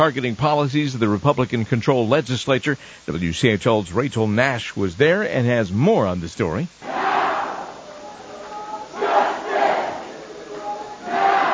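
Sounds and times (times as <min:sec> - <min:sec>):
speech: 0:00.0 - 0:07.1
hundreds of protesters chanting inside a legislature building: 0:06.8 - 0:11.5.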